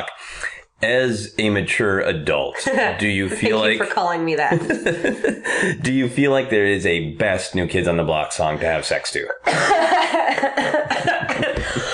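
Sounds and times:
speech: 0:00.8 - 0:10.8
laughter: 0:02.6 - 0:06.0, 0:09.4 - 0:11.9
person coughing hard: 0:09.4 - 0:10.0.

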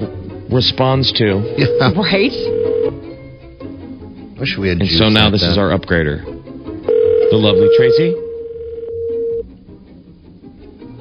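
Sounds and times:
speech: 0:00.5 - 0:02.6, 0:04.4 - 0:06.3, 0:07.3 - 0:08.2
electronic ringback tone on an outgoing phone call: 0:01.4 - 0:03.0, 0:06.9 - 0:09.4.

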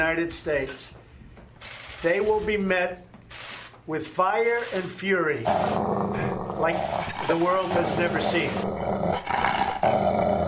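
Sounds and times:
speech: 0:00.0 - 0:01.0, 0:02.0 - 0:10.4
dog growling: 0:05.5 - 0:10.4.

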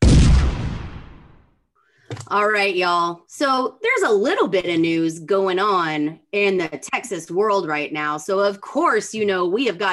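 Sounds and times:
cannon firing: 0:00.0 - 0:01.5
speech: 0:02.3 - 0:09.9.

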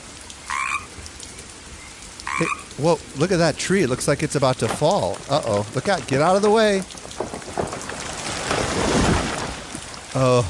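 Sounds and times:
steady hiss of noise, perhaps light rain: 0:00.0 - 0:10.4
frog croaking: 0:00.4 - 0:00.9, 0:02.2 - 0:02.8
speech: 0:02.4 - 0:07.0, 0:10.2 - 0:10.4.

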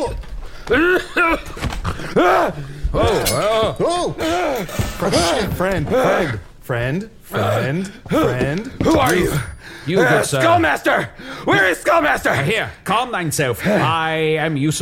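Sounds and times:
man groaning and gasping awake from sleep: 0:00.0 - 0:06.5, 0:07.3 - 0:10.4
speech: 0:00.0 - 0:14.8.

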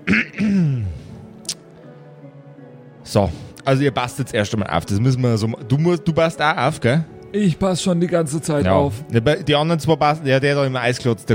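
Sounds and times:
person clearing throat: 0:00.0 - 0:01.2
speech: 0:03.1 - 0:11.3.

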